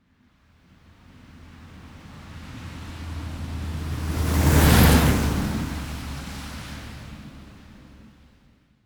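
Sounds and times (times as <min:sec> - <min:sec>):
cars driving at medium speed on slushy wet asphalt through puddles: 0:01.2 - 0:08.1.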